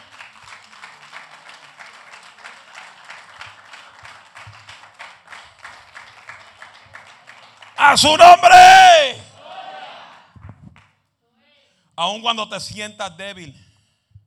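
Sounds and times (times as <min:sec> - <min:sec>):
audience applauding: 0:00.0 - 0:08.6
speech: 0:07.9 - 0:09.1, 0:12.0 - 0:13.6.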